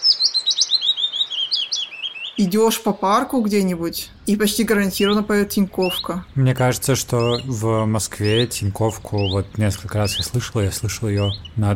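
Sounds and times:
willow warbler song of high whistled notes falling in pitch: 0.0s - 2.4s
speech: 2.4s - 11.7s.

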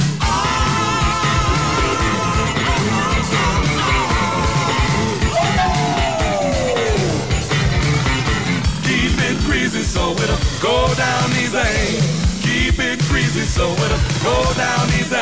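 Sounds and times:
loud dense rock music: 0.0s - 15.2s
person screaming wildly: 5.0s - 7.4s.

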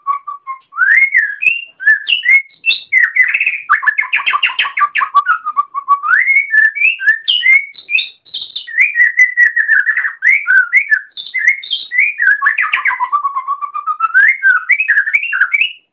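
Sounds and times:
Oriental magpie-robin singing: 0.0s - 15.9s.

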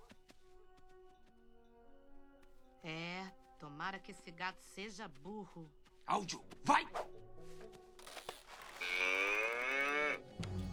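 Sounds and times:
speech: 2.8s - 7.8s
cow mooing: 8.8s - 10.3s.

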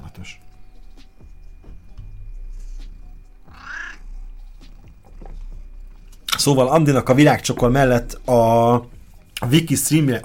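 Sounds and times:
speech: 0.2s - 0.4s, 6.4s - 10.2s
cat purring: 2.1s - 6.3s
brief higher cat call: 3.4s - 4.2s.

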